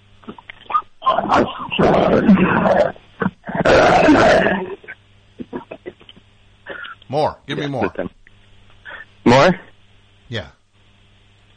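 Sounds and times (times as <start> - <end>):
dog's deep rough growl sounding like a tiger's roar: 1.1 - 4.8
speech: 1.2 - 3.0, 7.1 - 8.2, 9.4 - 9.6, 10.3 - 10.6.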